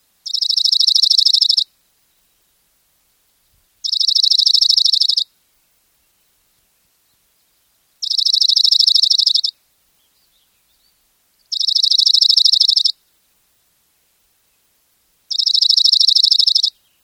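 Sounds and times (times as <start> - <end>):
dark-eyed junco calling: 0.2 - 1.7, 3.8 - 5.3, 8.0 - 9.6, 11.5 - 13.0, 15.3 - 16.8.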